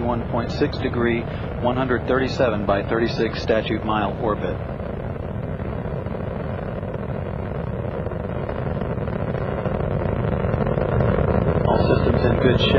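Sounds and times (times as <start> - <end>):
space shuttle engines roaring during ascent: 0.0 - 12.7
speech: 0.1 - 4.8, 12.5 - 12.7.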